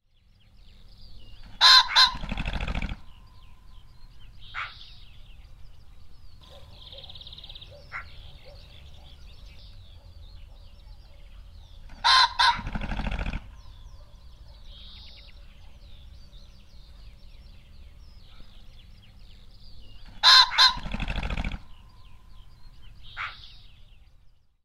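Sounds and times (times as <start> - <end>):
male pheasant two-syllable hoarse crow: 1.3 - 3.2, 6.4 - 9.2, 11.8 - 14.1, 20.0 - 23.6
male pheasant wings whirring: 1.4 - 3.1, 11.9 - 13.6, 20.0 - 21.8.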